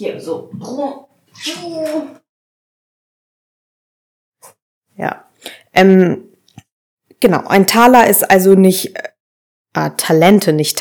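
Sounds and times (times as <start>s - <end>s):
speech: 0.0s - 2.2s, 5.0s - 6.3s, 7.2s - 9.1s, 9.8s - 10.7s
cat meowing: 1.4s - 2.2s.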